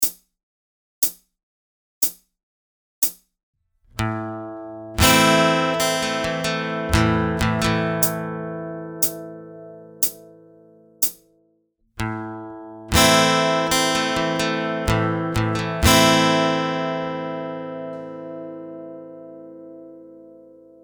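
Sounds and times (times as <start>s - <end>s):
slow pick strumming pattern: 3.9s - 10.6s, 12.0s - 20.5s.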